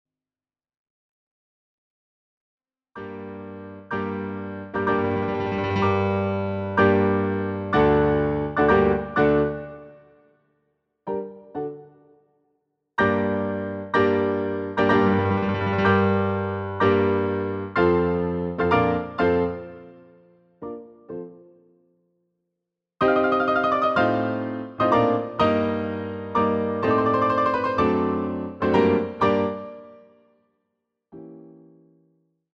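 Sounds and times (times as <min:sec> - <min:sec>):
piano duet: 0:03.0 - 0:10.1, 0:11.1 - 0:12.2, 0:13.0 - 0:21.7, 0:23.0 - 0:30.2, 0:31.1 - 0:32.1.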